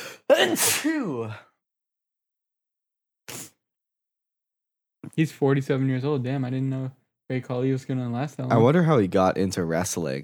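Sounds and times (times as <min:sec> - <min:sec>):
loud sneeze: 0:00.3 - 0:01.4, 0:03.3 - 0:03.6
speech: 0:00.4 - 0:01.5, 0:05.2 - 0:10.2.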